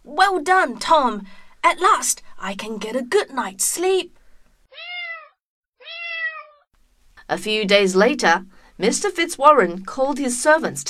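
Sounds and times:
speech: 0:00.2 - 0:04.2, 0:07.3 - 0:10.8
cat chasing mice meowing: 0:04.7 - 0:06.7.

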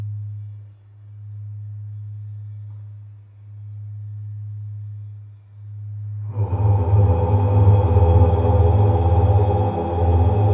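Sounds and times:
singing bowl humming: 0:06.2 - 0:10.5.

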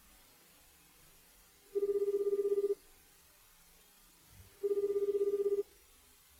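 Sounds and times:
telephone ringback tone with rapid warbling pulse: 0:01.7 - 0:02.8, 0:04.6 - 0:05.7.

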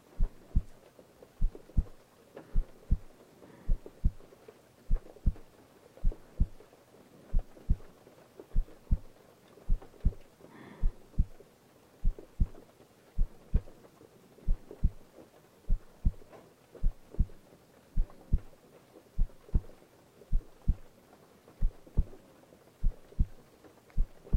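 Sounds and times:
faint soft hiss: 0:00.0 - 0:24.3
heartbeat thumping as a low double thud: 0:00.1 - 0:00.8, 0:01.4 - 0:03.1, 0:03.7 - 0:04.3, 0:04.9 - 0:06.6, 0:07.3 - 0:07.9, 0:08.5 - 0:09.1, 0:09.7 - 0:10.2, 0:10.8 - 0:11.4, 0:12.0 - 0:12.6, 0:13.2 - 0:13.7, 0:14.5 - 0:15.1, 0:15.7 - 0:17.4, 0:18.0 - 0:18.5, 0:19.2 - 0:20.9, 0:21.6 - 0:22.2, 0:22.8 - 0:23.4, 0:24.0 - 0:24.3.

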